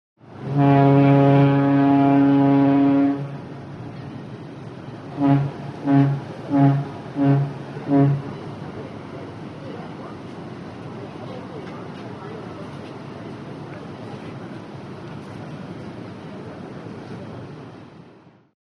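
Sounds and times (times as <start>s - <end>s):
ship horn long and short blasts: 0.3s - 3.6s, 5.0s - 8.6s.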